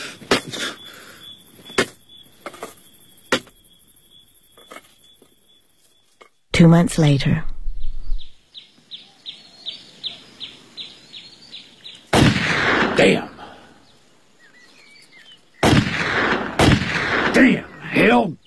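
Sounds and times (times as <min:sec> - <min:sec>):
high rhythmic chirping: 0:00.0 - 0:06.2
speech: 0:06.6 - 0:07.5, 0:13.0 - 0:13.3
gunshots fired at playing cards: 0:12.1 - 0:13.7, 0:15.6 - 0:18.1.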